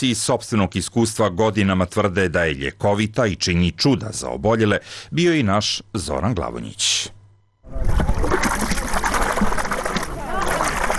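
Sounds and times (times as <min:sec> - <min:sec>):
speech: 0:00.0 - 0:08.6
very salty spring water pouring into a pool at a natural spa in Serbia: 0:07.7 - 0:10.9.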